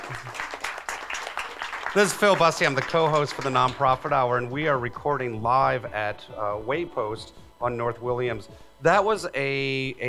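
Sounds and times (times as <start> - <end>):
audience applause: 0.0 - 4.1
speech: 2.0 - 10.0.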